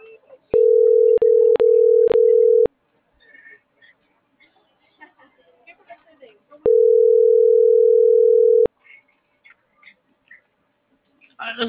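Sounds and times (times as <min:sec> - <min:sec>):
telephone ringing tone on an unanswered call: 0:00.6 - 0:02.7, 0:06.7 - 0:08.7.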